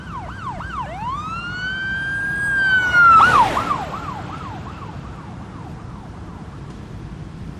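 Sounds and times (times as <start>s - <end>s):
police car siren yelping and wailing: 0.0s - 6.6s
rushing road noise: 0.0s - 7.5s
police car speeding past on a quiet road: 2.2s - 5.4s.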